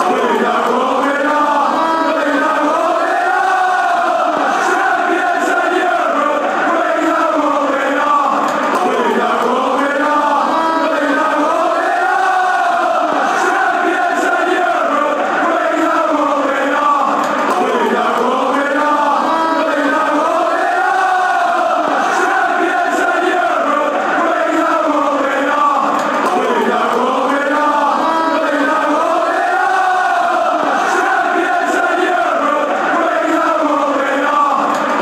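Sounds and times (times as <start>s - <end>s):
football crowd chanting: 0.0s - 34.9s.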